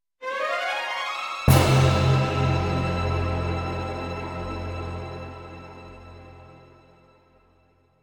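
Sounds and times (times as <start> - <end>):
short suspense music: 1.5 - 7.6.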